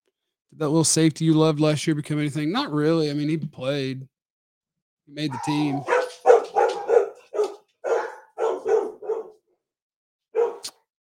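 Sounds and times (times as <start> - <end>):
speech: 0.5 - 4.1, 5.1 - 6.0
dogs barking excitedly: 5.2 - 9.4, 10.4 - 10.7.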